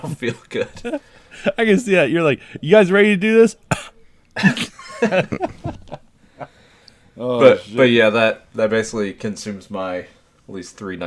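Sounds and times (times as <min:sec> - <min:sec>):
laughter: 0:00.0 - 0:02.7, 0:04.4 - 0:06.6
speech: 0:00.0 - 0:06.5, 0:07.2 - 0:11.0
person forcing out exaggerated deliberate coughs: 0:03.7 - 0:05.5.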